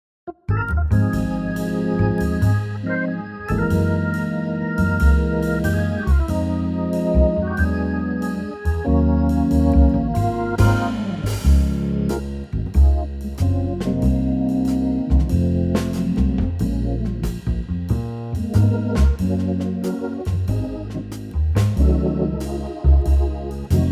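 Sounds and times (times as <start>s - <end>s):
organ trio in D flat: 0.5s - 23.9s.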